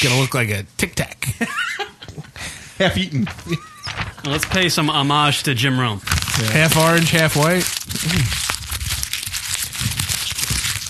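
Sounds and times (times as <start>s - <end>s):
speech: 0.0s - 1.6s, 2.8s - 8.4s
paper being crumpled: 3.3s - 5.4s, 6.0s - 10.8s.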